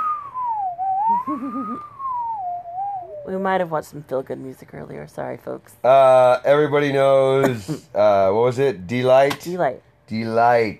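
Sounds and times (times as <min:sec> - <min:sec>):
slide whistle gliding tone: 0:00.0 - 0:03.4
warbling lower tone: 0:00.0 - 0:03.6
speech: 0:01.1 - 0:02.0, 0:03.2 - 0:10.7.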